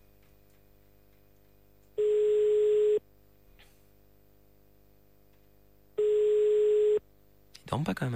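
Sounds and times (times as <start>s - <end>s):
ringback tone of an outgoing telephone call: 2.0s - 3.0s, 6.0s - 7.0s.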